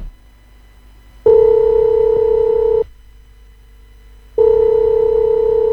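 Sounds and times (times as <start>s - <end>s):
telephone dialing tones: 1.3s - 2.9s, 4.4s - 5.7s.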